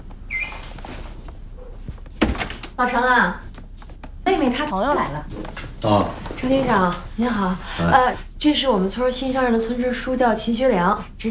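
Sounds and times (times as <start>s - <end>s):
soft shuffling: 0.0s - 2.2s, 3.4s - 7.6s
door creaking squeak while being closed: 0.1s - 2.8s
speech: 2.8s - 3.5s, 4.3s - 11.2s.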